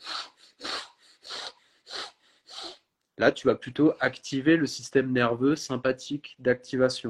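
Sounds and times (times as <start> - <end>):
rapid deep inhalations in a breathing demonstration: 0.0 - 2.9
speech: 3.2 - 7.0.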